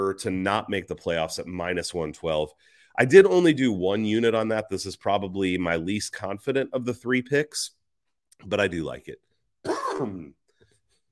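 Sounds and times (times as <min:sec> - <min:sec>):
speech: 0:00.0 - 0:07.8, 0:08.4 - 0:10.4
quiet breathing: 0:02.5 - 0:03.0
person coughing: 0:09.6 - 0:10.4.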